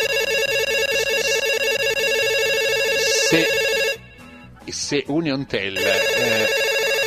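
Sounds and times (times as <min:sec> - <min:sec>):
phone ringtone with bright warbling electronic tone: 0:00.0 - 0:04.2, 0:05.8 - 0:07.0
speech: 0:03.3 - 0:03.6, 0:04.7 - 0:06.7.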